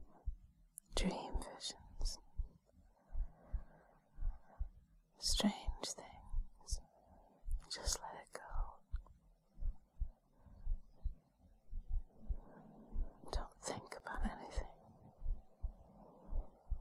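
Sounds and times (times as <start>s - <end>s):
human heartbeat in soft double beats: 0.0s - 16.8s
person whispering: 0.8s - 2.2s, 5.2s - 6.8s, 7.6s - 8.9s, 13.1s - 14.8s
speech: 1.0s - 2.2s, 5.3s - 5.6s.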